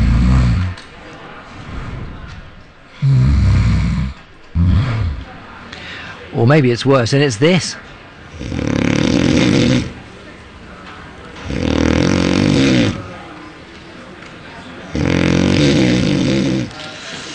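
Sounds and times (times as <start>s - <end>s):
loud rasping snoring: 0.0s - 0.8s, 2.9s - 5.3s, 8.3s - 10.0s, 11.4s - 13.1s, 14.9s - 16.8s
quiet breathing: 0.0s - 6.4s, 16.4s - 17.3s
speech: 6.4s - 8.8s.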